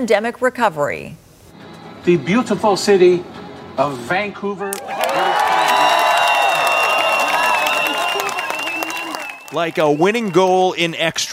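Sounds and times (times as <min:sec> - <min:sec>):
speech: 0:00.0 - 0:01.2, 0:02.0 - 0:05.3, 0:09.5 - 0:11.3
large stadium crowd cheering: 0:04.7 - 0:11.3
people clapping: 0:04.7 - 0:11.3
shrill whistles from the crowd: 0:05.2 - 0:10.6.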